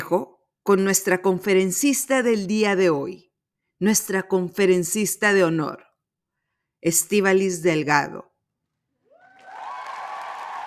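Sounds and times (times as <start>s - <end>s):
speech: 0.1s - 5.9s, 6.8s - 8.3s
audience cheers and whoops: 9.1s - 10.6s
crowd applause after a speaker's introduction: 9.1s - 10.6s.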